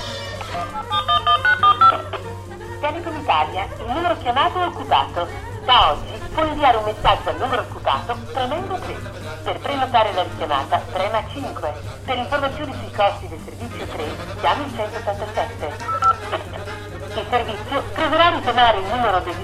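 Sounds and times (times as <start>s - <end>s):
laughter: 0.0s - 19.4s
low steady hum: 0.0s - 19.4s
person talking: 0.0s - 19.4s
telephone keypad tones: 15.9s - 16.2s.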